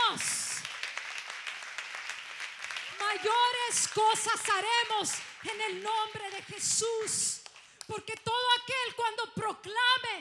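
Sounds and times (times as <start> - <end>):
congregation applauding at a church service: 0.0 - 7.7
speech: 3.1 - 10.1.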